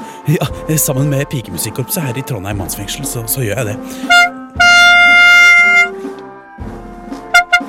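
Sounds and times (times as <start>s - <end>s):
speech: 0.3s - 4.4s
loud blaring air horn blasts: 4.0s - 6.0s, 7.3s - 7.6s.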